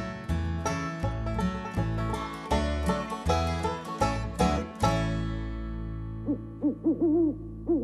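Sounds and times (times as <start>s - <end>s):
strummed acoustic music: 0.0s - 6.6s
owl-like hoots: 6.2s - 7.8s.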